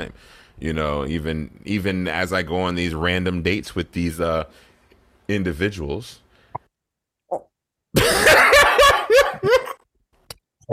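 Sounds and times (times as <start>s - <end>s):
speech: 0.0s - 4.7s, 5.3s - 6.2s, 7.3s - 8.4s
person coughing: 8.0s - 9.8s.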